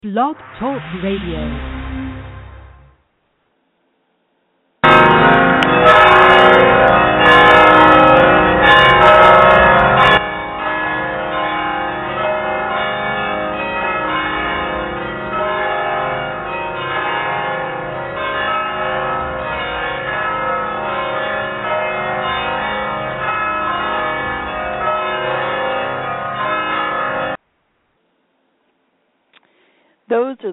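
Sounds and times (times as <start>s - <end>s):
speech: 0.0s - 1.8s
church bells ringing at a mission: 4.8s - 27.4s.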